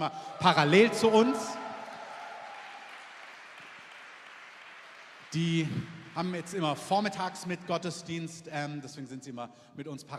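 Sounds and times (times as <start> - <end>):
speech: 0.0 - 1.6, 5.3 - 10.1
audience crowd applauding: 0.0 - 6.9.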